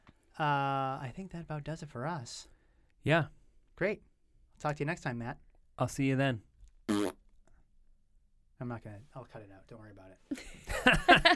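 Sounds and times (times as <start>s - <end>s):
speech: 0.4s - 7.2s, 8.6s - 11.3s
fart noise: 6.9s - 7.2s
laughter: 10.3s - 11.3s.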